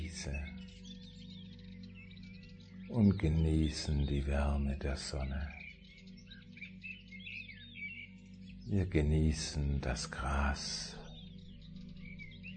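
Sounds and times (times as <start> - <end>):
birds chirping and twittering outdoors: 0.0 - 12.5
speech: 0.2 - 0.5, 2.9 - 5.6, 8.7 - 11.0.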